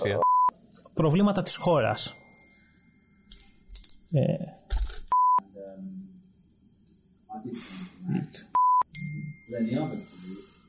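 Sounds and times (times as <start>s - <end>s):
speech: 0.0s - 0.3s, 1.0s - 2.2s, 4.1s - 4.6s, 7.4s - 8.5s, 9.5s - 10.1s
telephone beeps when calling a switched-off number: 8.6s - 9.3s.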